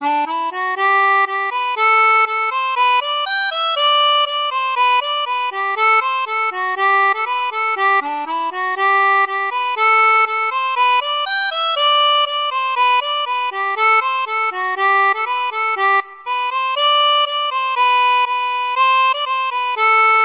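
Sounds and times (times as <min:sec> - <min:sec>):
natural harmonica playing English folk Morris dance tune: 0:00.0 - 0:20.2.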